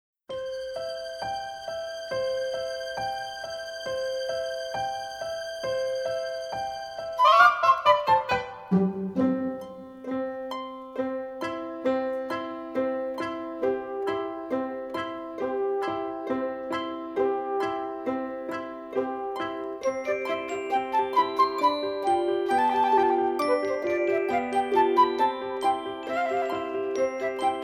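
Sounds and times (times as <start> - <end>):
scales and arpeggios karaoke backing music: 0.3 - 27.6.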